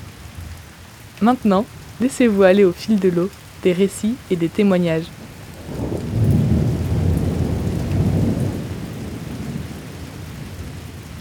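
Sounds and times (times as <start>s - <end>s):
steady rain with continuous hiss: 0.0s - 11.2s
speech: 1.2s - 5.9s
deep rolling rumble of thunder: 5.0s - 10.8s.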